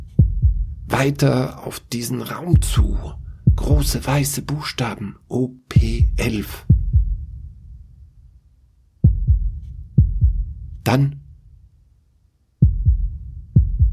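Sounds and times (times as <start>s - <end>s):
loud heartbeat thumping in deep paired beats: 0.0s - 0.9s, 2.6s - 4.2s, 5.8s - 7.5s, 9.0s - 10.8s, 12.6s - 13.9s
speech: 1.0s - 6.7s, 10.9s - 11.2s.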